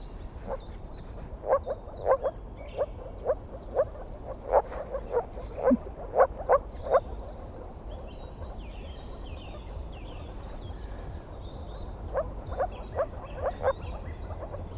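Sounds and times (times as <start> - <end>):
moor frog calling in a marsh: 1.4 - 8.1, 11.0 - 14.7.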